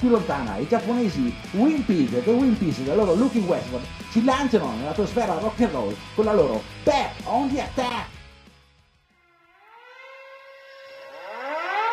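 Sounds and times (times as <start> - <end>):
speech: 0.0 - 8.2
siren wailing in a rising sweep: 9.1 - 11.9.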